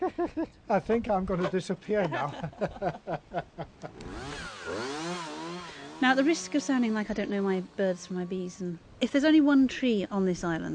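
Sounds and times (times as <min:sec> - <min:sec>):
speech: 0:00.0 - 0:04.8, 0:06.0 - 0:10.7
laughter: 0:01.3 - 0:04.0
chainsaw engine droning and revving beside an old tree: 0:03.9 - 0:08.6.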